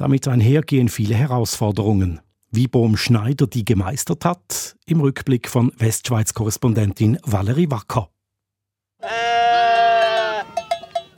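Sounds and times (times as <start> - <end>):
speech: 0.0 - 8.2
sheep bleating: 9.0 - 10.9
bell clanking: 9.9 - 11.1.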